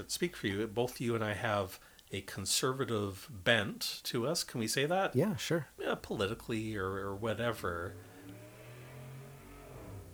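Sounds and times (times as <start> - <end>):
speech: 0.0 - 8.1
hot rod car engine rumbling and revving while parking: 7.3 - 10.1.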